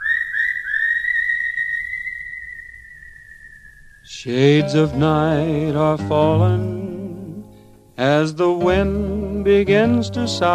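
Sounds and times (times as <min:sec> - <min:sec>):
whistled melody opening a western song: 0:00.0 - 0:10.5
speech: 0:04.1 - 0:06.9, 0:08.0 - 0:10.5
soft low instrumental rumble: 0:04.6 - 0:10.5.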